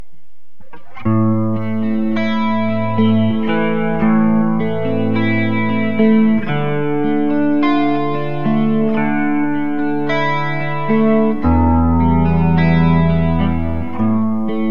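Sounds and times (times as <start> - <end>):
clean electric guitar from dragon neck pickup: 0.6 - 14.6.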